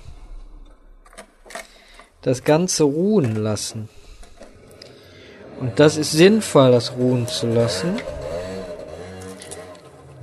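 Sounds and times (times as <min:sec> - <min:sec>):
speech: 0:02.2 - 0:04.0, 0:05.6 - 0:08.2
motorcycle engine revving outside: 0:03.9 - 0:10.2.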